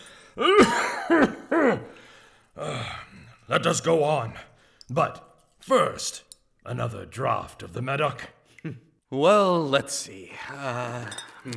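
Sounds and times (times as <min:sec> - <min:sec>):
speech: 0:00.4 - 0:00.8, 0:03.5 - 0:11.5
person coughing in a hacking fit: 0:00.4 - 0:02.0.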